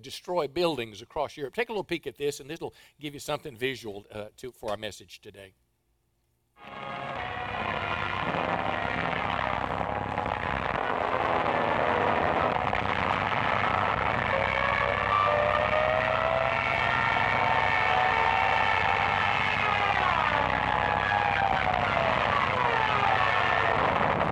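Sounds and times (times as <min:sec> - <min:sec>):
speech: 0:00.0 - 0:05.6
World War II propeller-driven dive bomber aircraft roaring: 0:06.6 - 0:24.2.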